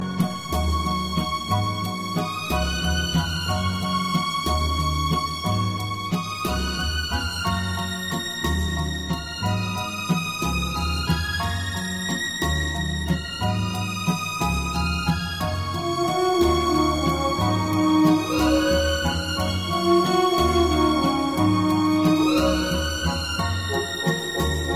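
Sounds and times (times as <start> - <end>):
sweet violin: 0.0 - 24.7.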